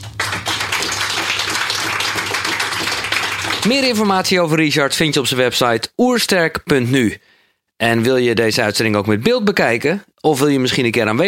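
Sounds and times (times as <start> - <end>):
audience applause: 0.0 - 4.3
speech: 3.6 - 11.2.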